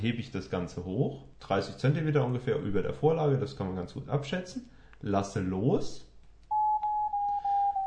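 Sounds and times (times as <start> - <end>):
speech: 0.0 - 6.1
smartphone sustained electronic beep tone indicating device tilt: 6.5 - 7.8.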